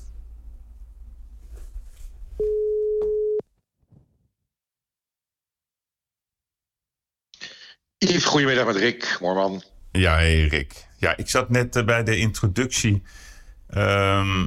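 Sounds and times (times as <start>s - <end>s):
phone ringback tone as a phone call is placed: 2.4s - 3.4s
speech: 8.0s - 14.4s.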